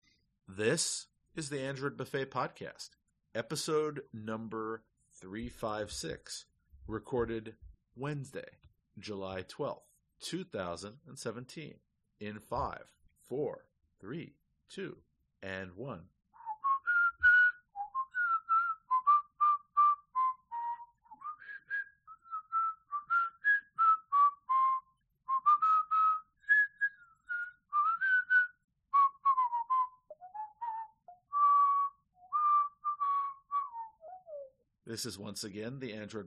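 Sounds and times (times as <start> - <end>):
speech: 0.5 - 16.1, 34.9 - 36.2
bright whistled opening theme tune: 16.4 - 34.7.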